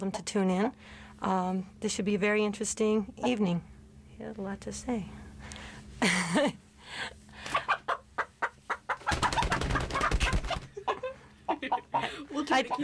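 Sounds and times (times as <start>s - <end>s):
speech: 0.0s - 7.6s, 11.9s - 12.8s
Barred Rock hen clucking: 3.2s - 3.5s, 7.5s - 12.8s.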